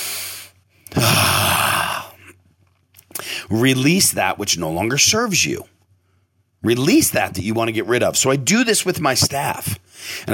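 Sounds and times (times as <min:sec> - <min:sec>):
long breath blown out through the mouth: 0:00.0 - 0:02.2
speech: 0:03.5 - 0:05.7, 0:06.6 - 0:10.3.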